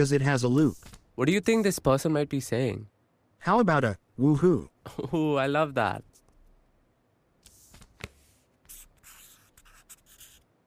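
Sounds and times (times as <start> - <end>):
speech: 0.0 - 6.1
pen or pencil drawing a picture of a guitar on paper: 7.5 - 10.4.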